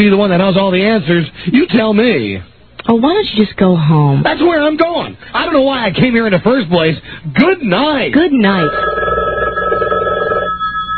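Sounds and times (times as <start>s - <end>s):
speech: 0.0s - 9.1s
telephone bell ringing: 8.5s - 10.9s.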